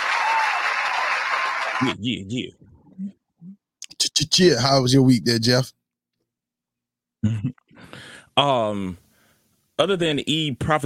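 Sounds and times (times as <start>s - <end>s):
dense round of applause: 0.0s - 1.9s
speech: 1.8s - 3.6s, 4.2s - 5.8s, 7.2s - 9.0s, 9.8s - 10.8s.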